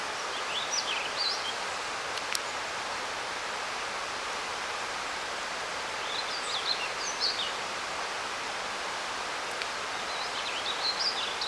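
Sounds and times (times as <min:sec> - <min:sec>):
river rushing: 0:00.0 - 0:11.4
faint clicks: 0:02.1 - 0:02.5, 0:09.5 - 0:09.8.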